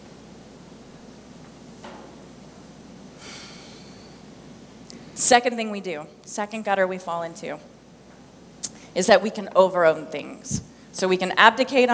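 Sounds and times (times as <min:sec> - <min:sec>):
steady hiss: 0:00.0 - 0:11.9
deep breath: 0:03.2 - 0:04.2
speech: 0:05.2 - 0:07.8, 0:09.0 - 0:11.9.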